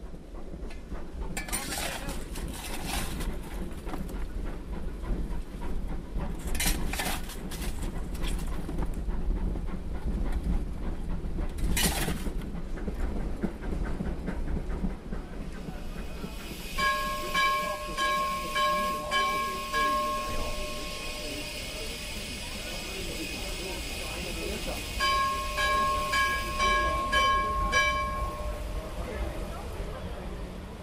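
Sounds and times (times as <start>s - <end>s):
steam locomotive running with rumbling chug and hiss: 0.0s - 30.8s
faint voices: 15.0s - 30.8s.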